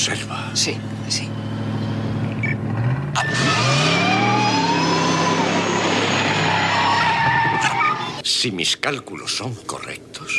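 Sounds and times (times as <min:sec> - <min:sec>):
speech: 0:00.0 - 0:01.6, 0:08.4 - 0:10.3
remote-controlled car tires squealing and skidding: 0:01.3 - 0:08.2
remote-controlled car revving and accelerating hard: 0:03.2 - 0:08.2.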